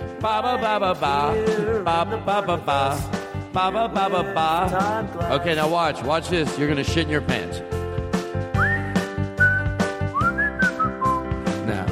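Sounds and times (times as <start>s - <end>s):
speech: 0.2s - 7.8s
person whistling a short melodic tune: 8.5s - 11.4s.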